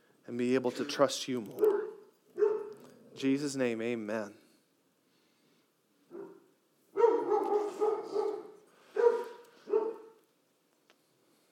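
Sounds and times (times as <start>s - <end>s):
speech: 0.3s - 1.9s, 3.2s - 4.4s
dog barking: 1.6s - 2.9s, 6.1s - 10.2s.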